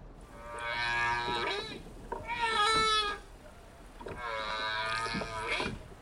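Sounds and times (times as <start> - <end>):
humpback whale song: 0.2 - 5.9.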